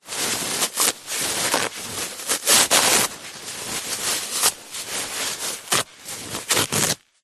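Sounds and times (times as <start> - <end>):
household toilet paper mass ripping and tearing: 0.1 - 7.1.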